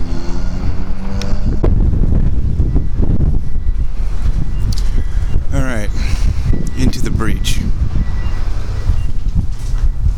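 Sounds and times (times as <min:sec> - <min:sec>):
strong wind blowing across the microphone outdoors outside a grocery store: 0:00.0 - 0:10.1.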